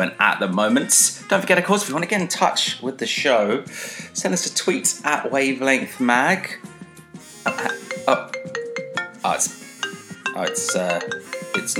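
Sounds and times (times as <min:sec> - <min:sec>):
speech: 0:00.0 - 0:06.7, 0:08.1 - 0:08.3, 0:09.3 - 0:09.6, 0:10.4 - 0:11.7
phone ringtone playing a short bright electronic melody: 0:07.5 - 0:11.7.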